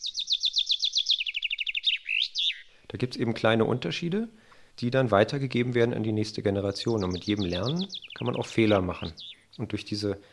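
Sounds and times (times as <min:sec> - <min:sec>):
chaffinch singing bright rapid descending trill: 0:00.0 - 0:02.7, 0:06.6 - 0:09.8
speech: 0:02.9 - 0:10.3.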